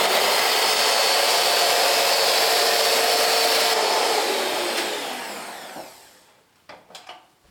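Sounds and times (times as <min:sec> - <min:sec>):
hand-held electric mixer whipping cream: 0:00.0 - 0:06.3
faint clicks and knocks: 0:06.6 - 0:07.4.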